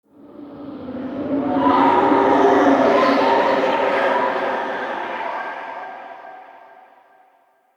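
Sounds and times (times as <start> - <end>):
eerie ambient texture: 0.1 - 7.0.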